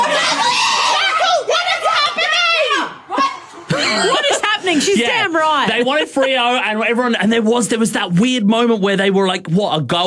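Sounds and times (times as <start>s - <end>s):
group of girls shouting and shrieking excitedly: 0.0s - 5.6s
laughter: 2.9s - 6.6s
speech: 5.0s - 10.0s.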